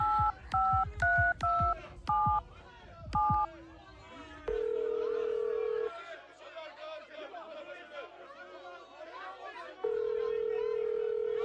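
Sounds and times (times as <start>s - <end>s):
murmur of chatter: 0.0s - 11.4s
long steady telephone ringback tones: 4.5s - 5.9s, 9.8s - 11.4s.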